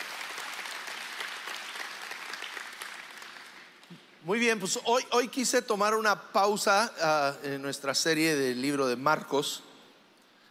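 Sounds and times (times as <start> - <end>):
audience applause: 0.0 - 3.9
speech: 3.9 - 9.7.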